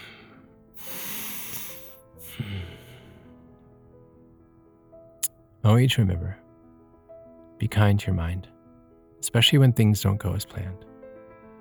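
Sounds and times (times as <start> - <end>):
deep breath: 0.0 - 3.4
speech: 5.6 - 6.4, 7.6 - 8.5, 9.2 - 10.9.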